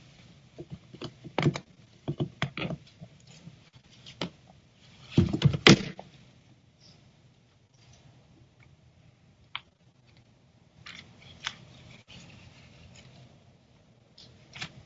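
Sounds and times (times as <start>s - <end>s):
low hum: 0.0s - 14.8s
thin Bible pages being flipped: 10.8s - 13.4s, 14.2s - 14.8s.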